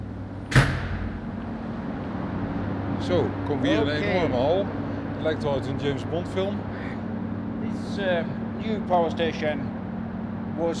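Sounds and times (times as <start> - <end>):
steady low mechanical hum: 0.0 - 10.7
heavy steel door clunking open: 0.4 - 1.4
speech: 3.0 - 7.0, 7.7 - 9.7, 10.6 - 10.7.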